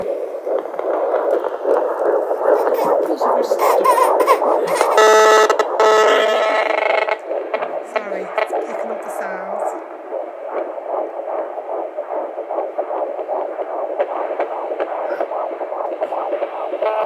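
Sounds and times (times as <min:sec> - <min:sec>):
electrified environment ambience: 0:00.0 - 0:17.0.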